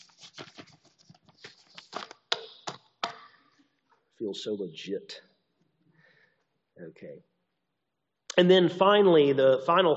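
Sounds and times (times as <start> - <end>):
paper note pages being shuffled and moved: 0.0 - 2.9
sharper flicks of paper note pages: 0.0 - 3.4
speech: 4.2 - 5.3, 6.8 - 7.3, 8.4 - 9.9.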